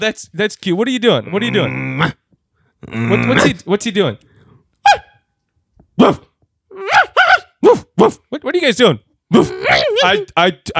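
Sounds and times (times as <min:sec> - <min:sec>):
speech: 0:00.0 - 0:02.2, 0:02.8 - 0:04.3, 0:06.0 - 0:06.3, 0:08.0 - 0:10.7
person imitating a dog barking: 0:04.8 - 0:05.2, 0:06.0 - 0:08.2, 0:09.4 - 0:10.2.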